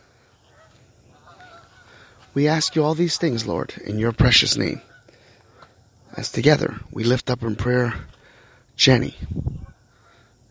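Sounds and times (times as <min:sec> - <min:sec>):
ducks honking as they fly overhead: 0:00.0 - 0:05.8, 0:09.5 - 0:10.4
speech: 0:02.4 - 0:04.9, 0:06.2 - 0:08.1, 0:08.8 - 0:09.6.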